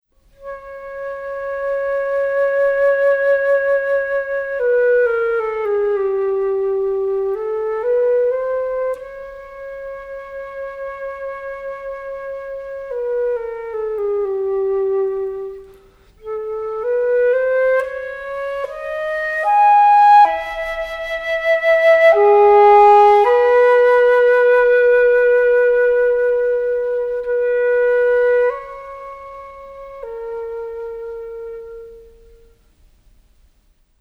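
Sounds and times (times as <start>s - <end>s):
transverse flute: 0.2s - 32.7s.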